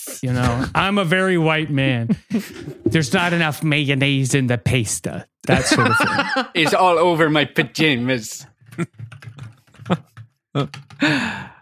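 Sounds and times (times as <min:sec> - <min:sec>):
speech: 0:00.0 - 0:11.6
laughter: 0:05.5 - 0:07.1
typewriter keys clacking: 0:08.8 - 0:11.0
breathy vocal sigh or gasp: 0:11.0 - 0:11.6.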